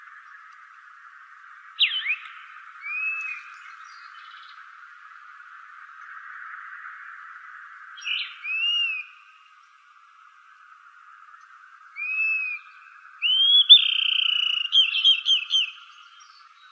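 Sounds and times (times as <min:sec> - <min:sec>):
dusky-capped flycatcher whistling calls in Arizona: 0:01.8 - 0:04.6, 0:08.0 - 0:09.2, 0:12.0 - 0:16.7.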